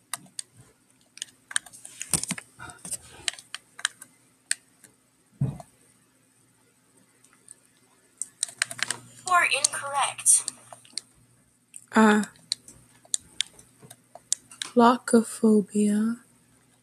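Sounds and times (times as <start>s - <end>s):
typing on a computer keyboard: 0.0s - 4.9s, 8.2s - 9.0s, 12.3s - 14.8s
speech: 9.4s - 10.6s, 12.0s - 12.4s, 14.8s - 16.2s.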